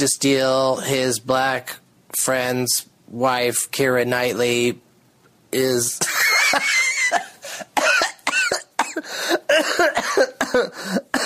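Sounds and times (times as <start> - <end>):
speech: 0.0 - 4.9, 5.5 - 7.3
person in a coughing fit: 7.0 - 11.2.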